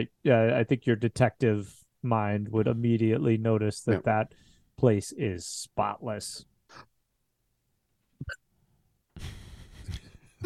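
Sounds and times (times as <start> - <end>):
speech: 0.0 - 6.9
hiccup: 8.2 - 8.4.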